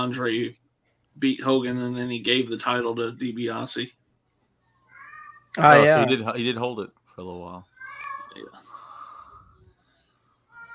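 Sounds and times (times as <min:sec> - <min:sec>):
speech: 0:00.0 - 0:00.6, 0:01.2 - 0:04.0, 0:05.6 - 0:07.7, 0:08.4 - 0:08.6
faint breathy noise: 0:00.0 - 0:05.0, 0:07.8 - 0:10.7
cat meowing: 0:04.8 - 0:06.1, 0:07.8 - 0:08.6, 0:10.5 - 0:10.7.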